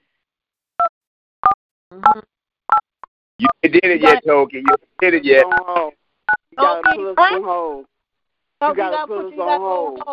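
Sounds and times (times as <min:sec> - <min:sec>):
touch-tone phone keypad beeps while dialing to add a call: 0:00.8 - 0:04.8, 0:05.5 - 0:05.7, 0:06.3 - 0:07.0
speech: 0:02.0 - 0:02.3, 0:03.4 - 0:06.0, 0:06.6 - 0:07.9, 0:08.6 - 0:10.1.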